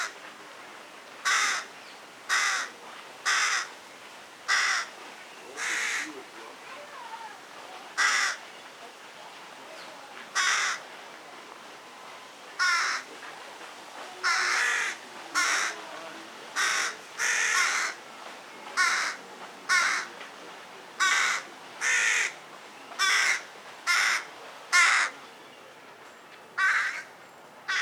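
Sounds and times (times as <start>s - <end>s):
faint hiss: 0.0s - 27.8s
carrion crow cawing, Corvus corone: 1.2s - 1.7s, 2.3s - 3.7s, 4.5s - 4.9s, 5.6s - 6.1s, 8.0s - 8.4s, 10.4s - 10.8s, 12.6s - 13.1s, 14.2s - 15.8s, 16.6s - 18.0s, 18.8s - 20.1s, 21.0s - 22.4s, 23.0s - 25.1s, 26.6s - 27.1s.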